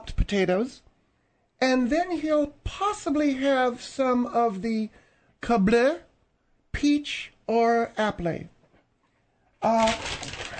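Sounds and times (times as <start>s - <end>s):
speech: 0.3s - 0.9s, 1.6s - 6.1s, 6.8s - 8.6s, 9.6s - 10.4s
paper rustling and crinkling from restless handling: 9.6s - 10.5s.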